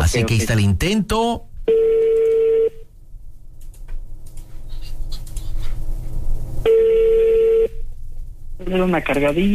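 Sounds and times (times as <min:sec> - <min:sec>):
speech: 0:00.1 - 0:02.0, 0:08.7 - 0:09.5
phone call ringback tones: 0:01.7 - 0:02.8, 0:06.7 - 0:07.8.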